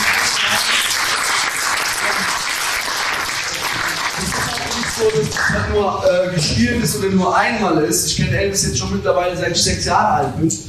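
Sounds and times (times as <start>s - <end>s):
audience applause: 0.0s - 5.7s
speech: 5.0s - 10.6s.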